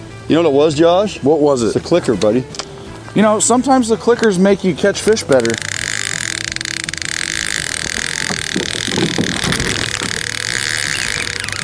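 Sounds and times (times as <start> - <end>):
speech: 0.3 - 5.7
car engine humming while braking and turning: 4.7 - 11.6.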